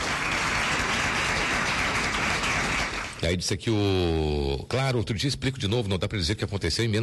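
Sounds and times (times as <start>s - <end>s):
applause from a group: 0.0s - 3.3s
speech: 3.2s - 7.0s.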